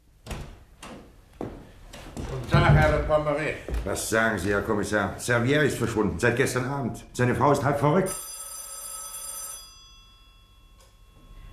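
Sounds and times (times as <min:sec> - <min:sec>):
speech: 0:02.6 - 0:08.3
telephone bell ringing: 0:08.1 - 0:11.5.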